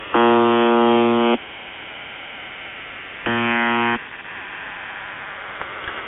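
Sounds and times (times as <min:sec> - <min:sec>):
buzzer: 0:00.1 - 0:01.4, 0:03.3 - 0:04.0.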